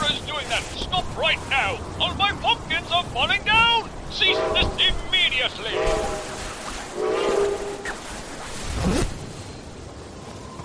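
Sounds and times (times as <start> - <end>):
train rumbling along a town street: 0.0 - 10.6
train whistle on a town street: 4.2 - 4.8, 5.7 - 6.3, 7.0 - 7.9.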